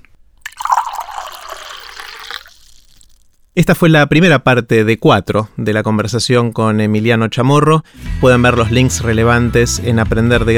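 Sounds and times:
water pouring into a glass: 0.4 - 3.4
speech: 3.6 - 10.5.

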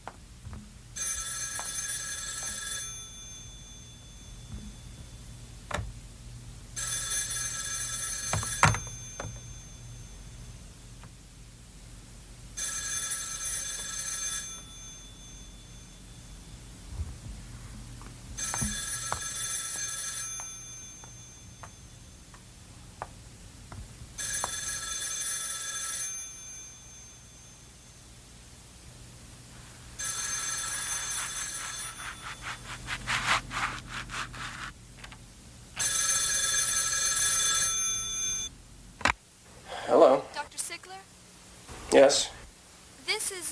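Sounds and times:
low hum: 0.0 - 43.4
telephone bell ringing: 1.0 - 5.1, 6.8 - 10.5, 12.6 - 16.6, 18.4 - 22.3, 24.2 - 28.0, 30.0 - 32.7, 35.8 - 38.5
speech: 41.9 - 42.4, 43.3 - 43.4.

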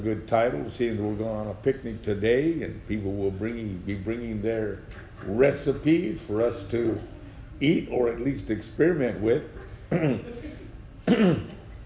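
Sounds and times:
speech: 0.0 - 11.6
man coughing during a Bible study: 9.9 - 10.4, 11.0 - 11.6.

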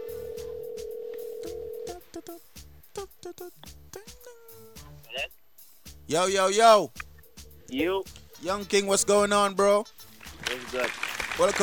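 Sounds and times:
steady electronic phone ring tone: 0.0 - 2.0
speech: 2.2 - 5.4, 6.1 - 7.0, 7.7 - 10.0, 10.7 - 11.6.

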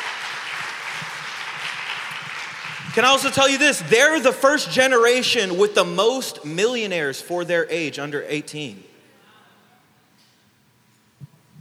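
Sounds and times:
crowd applauding: 0.0 - 4.4
speech: 3.0 - 8.9.

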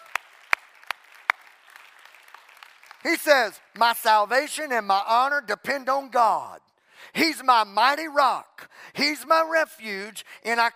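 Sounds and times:
audience clapping hands: 0.0 - 3.8
speech: 3.0 - 10.7.

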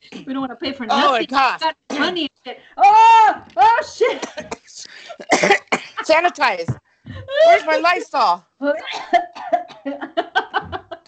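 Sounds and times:
speech: 0.3 - 10.7
person coughing in harsh throaty bursts: 4.1 - 6.1, 8.8 - 10.9
laughter: 7.1 - 8.3, 9.1 - 11.0.

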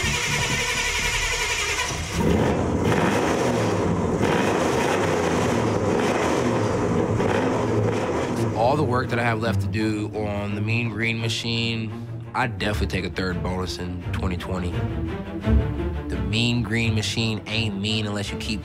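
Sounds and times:
car engine roaring: 0.0 - 18.6
speech: 8.8 - 18.6.

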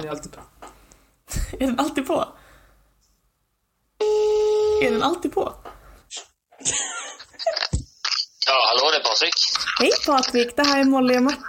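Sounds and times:
speech: 0.0 - 0.6, 1.3 - 2.4, 4.8 - 6.9, 8.5 - 11.4
steady mid-pitched electronic telephone tone while placing a call: 4.0 - 5.0
laughter: 6.6 - 7.8.

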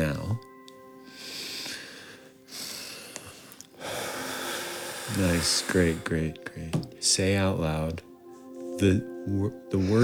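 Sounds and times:
group of people each taking a single breath in and out: 1.0 - 6.1
speech: 5.1 - 8.1, 8.8 - 10.0.

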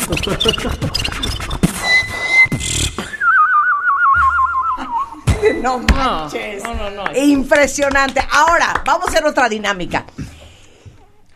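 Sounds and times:
fast vocal beatbox percussion: 0.0 - 6.1
speech: 0.1 - 1.5, 5.6 - 10.2
warbling trilling whistle imitating a goldfinch's song: 0.1 - 5.8.

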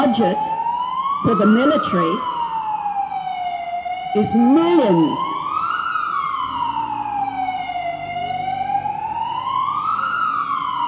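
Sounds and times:
emergency vehicle siren wailing: 0.0 - 10.8
speech: 0.2 - 0.6, 1.2 - 2.3, 4.1 - 5.3.

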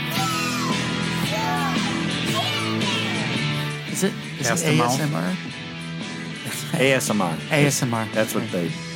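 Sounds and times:
several children shrieking and yelling: 0.1 - 3.5
speech: 4.0 - 5.7, 6.7 - 8.9.

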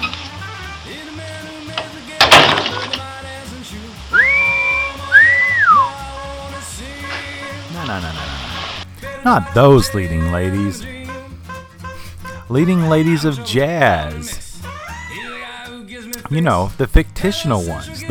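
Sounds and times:
person whistling: 4.1 - 6.1
speech: 9.2 - 11.0, 12.5 - 14.4, 16.3 - 18.1.

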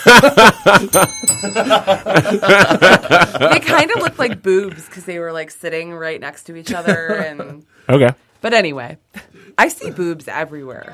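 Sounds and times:
laughter and chuckling: 0.0 - 4.4
speech: 0.0 - 10.9
bright bell ringing: 0.9 - 3.0.

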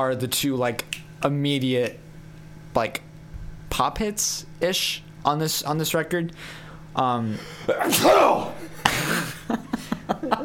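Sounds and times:
speech: 0.0 - 2.0, 2.8 - 3.1, 3.8 - 9.6
brief vocal sounds: 7.7 - 8.8
sneeze: 7.7 - 8.8
laughter: 8.3 - 10.4.

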